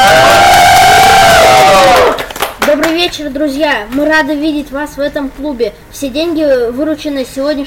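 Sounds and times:
crowd roaring and cheering at concert: 0:00.0 - 0:02.4
speech: 0:03.1 - 0:07.6.

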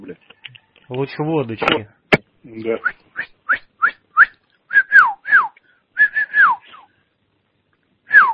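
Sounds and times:
speech: 0:00.0 - 0:02.0, 0:02.6 - 0:03.0
person whistling short chirpy notes: 0:02.8 - 0:06.9, 0:08.1 - 0:08.3.

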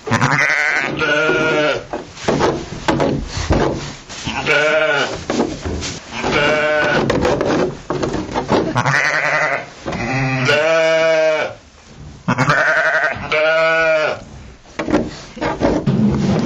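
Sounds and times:
faint rustling: 0:00.0 - 0:16.4
sheep bleating: 0:00.1 - 0:01.9, 0:04.3 - 0:05.2, 0:06.1 - 0:07.1, 0:08.8 - 0:11.6, 0:12.3 - 0:14.2.

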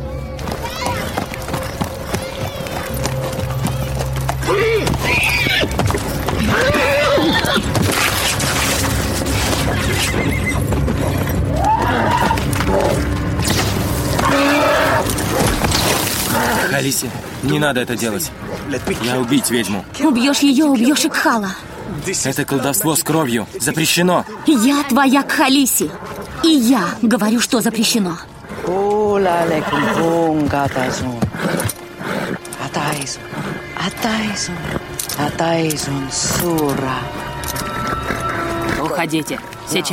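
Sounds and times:
horse hooves clopping unevenly on the ground: 0:00.2 - 0:16.6, 0:28.4 - 0:39.9
horse snorting and whinnying: 0:04.4 - 0:13.1, 0:14.1 - 0:16.8, 0:28.3 - 0:35.2
speech: 0:17.4 - 0:31.6, 0:33.9 - 0:37.2, 0:39.0 - 0:39.9.

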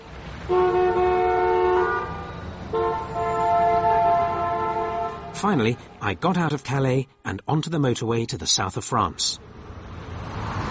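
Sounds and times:
steady rumble of traffic in Calais: 0:00.0 - 0:10.7
long loud car horn blasts in bad traffic in Calais: 0:00.5 - 0:05.4
speech: 0:05.4 - 0:09.5.

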